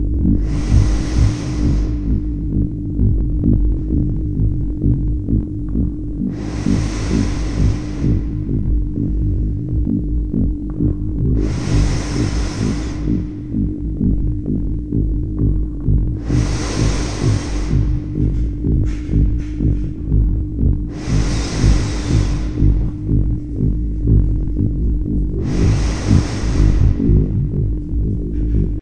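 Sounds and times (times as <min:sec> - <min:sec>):
landscape background ambience: 0:00.0 - 0:28.7.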